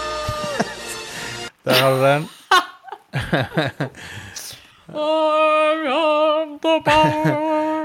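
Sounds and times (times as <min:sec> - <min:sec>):
short bursts of laughter-like vocal sounds: 0:00.2 - 0:01.1, 0:01.7 - 0:04.0, 0:06.9 - 0:07.6
speech: 0:01.7 - 0:07.6.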